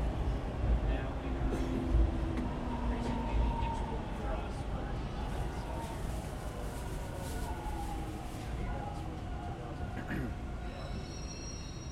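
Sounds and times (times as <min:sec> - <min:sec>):
subway train pulling into an underground station: 0:00.0 - 0:11.9
faint high subway train brake squeals: 0:10.6 - 0:11.9.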